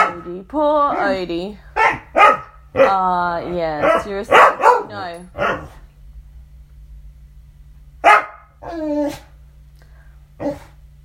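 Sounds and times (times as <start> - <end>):
dog barking with a whiny yowl: 0.0 - 0.3, 1.8 - 3.0, 3.8 - 5.8, 8.0 - 9.2
steady low hum: 0.0 - 11.0
speech: 0.2 - 5.8, 8.6 - 9.3, 10.4 - 10.7.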